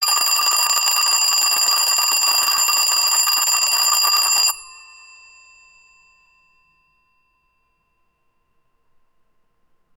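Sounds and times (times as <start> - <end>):
old fashioned alarm clock ringing persistently: 0.0 - 5.9.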